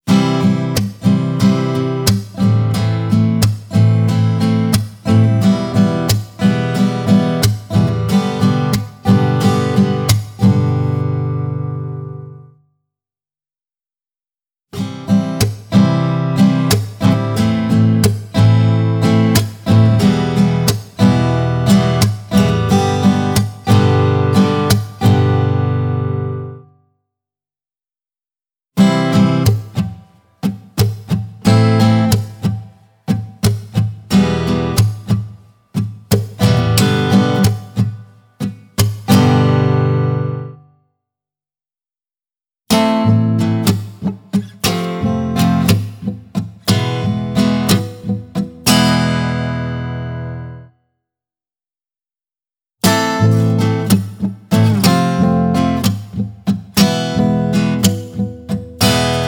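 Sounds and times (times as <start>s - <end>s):
acoustic guitar strumming: 0.1s - 12.6s, 14.8s - 26.7s, 28.8s - 40.7s, 42.7s - 50.7s, 52.8s - 59.2s.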